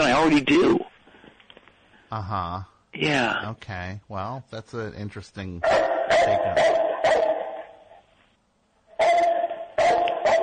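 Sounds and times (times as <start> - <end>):
speech: 0.2 - 0.9, 2.1 - 7.2
dog barking: 5.6 - 7.8, 9.0 - 10.4.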